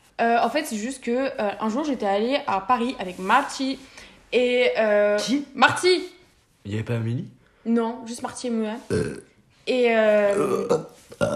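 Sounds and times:
speech: 0.2 - 11.3
long loud low-pitched burp: 8.9 - 9.4, 10.3 - 11.3.

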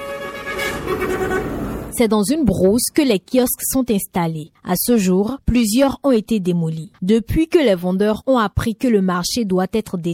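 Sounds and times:
car horn honking: 0.0 - 1.9
dense roadside traffic engine rumble near a market: 0.0 - 2.0
speech: 0.9 - 10.1.

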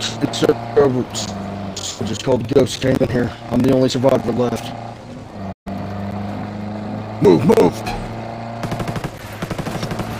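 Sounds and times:
speech: 0.2 - 1.4, 2.0 - 5.0, 7.2 - 8.0
automatic gunfire in a tactical military shooter video game: 8.6 - 10.1.

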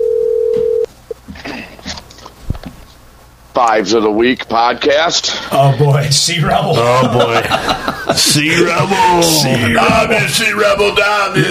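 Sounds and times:
telephone dial tone: 0.0 - 0.9
speech: 3.6 - 11.4
laughter: 6.7 - 10.4.

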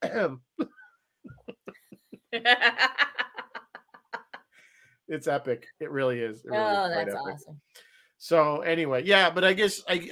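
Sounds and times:
harsh coughing: 0.0 - 1.8
speech: 0.2 - 0.5, 2.3 - 3.2, 5.1 - 10.1
laughter: 1.3 - 4.5.

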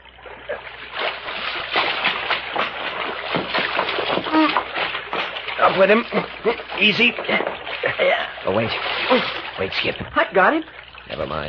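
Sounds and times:
heavy water splashing and sloshing in a creek: 0.0 - 11.4
person vocalizing: 4.2 - 4.6, 5.6 - 6.7, 7.3 - 8.4
speech: 5.8 - 11.4.

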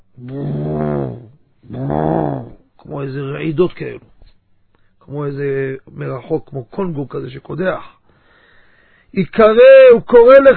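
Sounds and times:
speech: 0.2 - 0.6, 3.4 - 4.2, 5.1 - 8.0, 9.1 - 10.5
person imitating a dove cooing at night on its eggs: 0.2 - 2.6.

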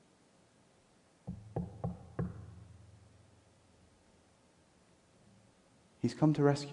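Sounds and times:
firm knocking on a wooden door: 1.3 - 2.9
speech: 6.0 - 6.7.

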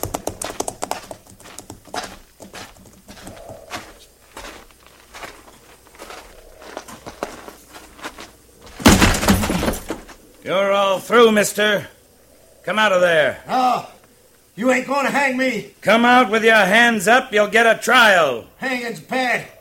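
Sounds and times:
hooves of several walking horses clip-clopping on hard ground: 0.0 - 10.2
speech: 10.5 - 12.0, 12.7 - 13.9, 14.6 - 19.5.

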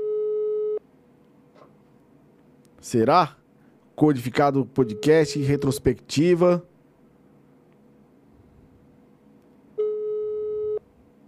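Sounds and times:
telephone busy tone on an unanswered call: 0.0 - 0.8, 9.8 - 10.8
speech: 2.8 - 3.4, 4.0 - 6.7.

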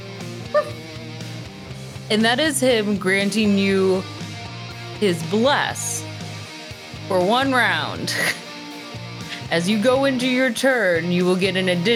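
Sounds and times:
pug barking: 0.6 - 0.8
speech: 2.1 - 4.2, 5.0 - 5.9, 7.1 - 8.4, 9.5 - 11.9.

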